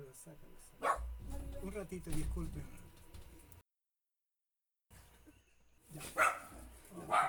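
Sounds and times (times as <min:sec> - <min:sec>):
speech: 0:00.0 - 0:01.0, 0:01.6 - 0:02.8, 0:05.9 - 0:06.3
small dog barking: 0:00.8 - 0:01.2, 0:05.9 - 0:07.2.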